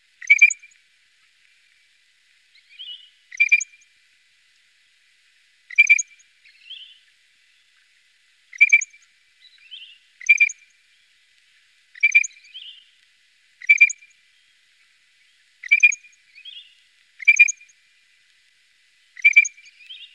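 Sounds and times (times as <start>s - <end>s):
Iberian grey shrike calling: 0.2s - 0.6s, 2.7s - 3.7s, 5.7s - 6.0s, 8.5s - 8.9s, 9.7s - 10.6s, 12.0s - 12.8s, 13.6s - 14.0s, 15.6s - 16.6s, 17.2s - 17.6s, 19.2s - 20.1s.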